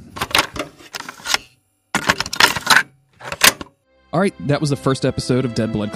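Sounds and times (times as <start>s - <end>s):
cassette tape being flipped over in a recorder: 0.0s - 3.7s
speech: 4.1s - 5.9s.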